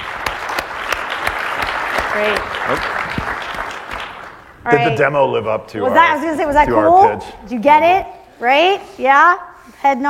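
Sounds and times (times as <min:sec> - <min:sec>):
audience applause: 0:00.0 - 0:04.8
speech: 0:02.2 - 0:03.0, 0:04.6 - 0:10.0.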